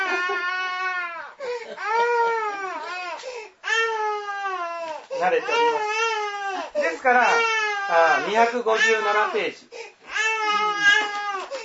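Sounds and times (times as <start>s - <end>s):
baby crying in the audience of a talk: 0.0s - 9.5s, 10.1s - 11.6s
speech: 5.2s - 6.0s, 6.8s - 9.8s.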